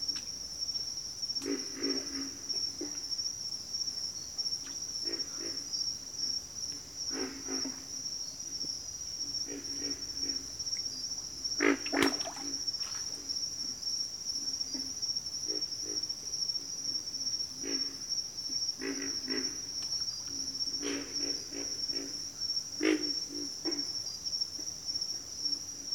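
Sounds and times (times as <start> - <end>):
pig frogs grunting in a bayou: 1.4 - 3.0, 5.0 - 5.8, 7.1 - 8.0, 9.3 - 13.4, 18.8 - 24.0.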